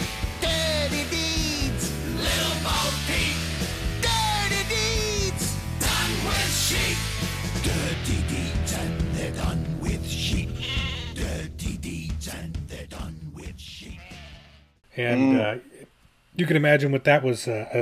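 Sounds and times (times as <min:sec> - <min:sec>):
driving rock band with heavy drums and guitar: 0:00.0 - 0:11.8
sheep bleating in a parody song: 0:10.5 - 0:11.5, 0:13.8 - 0:15.4
speech: 0:15.0 - 0:15.7, 0:16.4 - 0:17.8.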